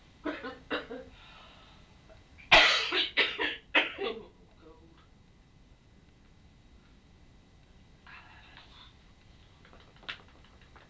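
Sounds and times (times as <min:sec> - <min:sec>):
person coughing: 0:00.3 - 0:01.1, 0:02.5 - 0:04.3.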